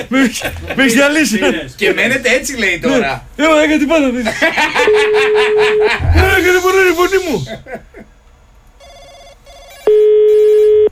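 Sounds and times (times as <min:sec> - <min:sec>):
laughter: 0:00.0 - 0:01.7, 0:04.0 - 0:08.1
speech: 0:00.0 - 0:07.9
faint noise: 0:00.0 - 0:10.9
telephone ringing during a prank call: 0:04.8 - 0:06.0, 0:08.8 - 0:10.9.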